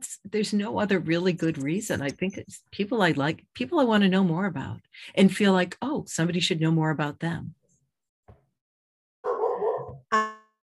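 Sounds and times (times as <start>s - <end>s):
speech: 0.3s - 7.6s
dog barking: 9.2s - 10.0s.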